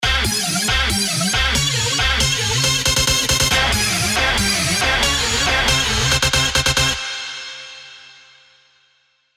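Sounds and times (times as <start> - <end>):
crunchy funk stab: 0.0 - 7.3
big room techno drops: 0.8 - 7.1.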